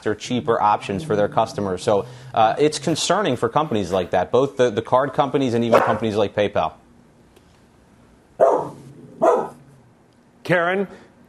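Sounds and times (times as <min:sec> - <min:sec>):
speech: 0:00.0 - 0:06.8, 0:10.5 - 0:11.0
dog barking: 0:05.7 - 0:06.0, 0:08.4 - 0:09.6.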